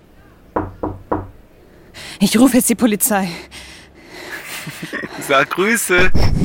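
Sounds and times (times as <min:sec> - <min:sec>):
knocking on a door: 0:00.6 - 0:01.4
speech: 0:02.2 - 0:03.5, 0:05.3 - 0:06.3
laughter: 0:04.3 - 0:05.7.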